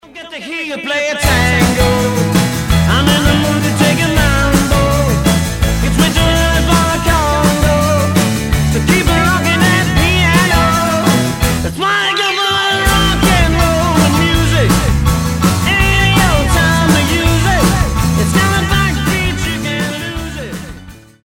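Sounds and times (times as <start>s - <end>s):
rock and roll music: 0.0s - 21.2s.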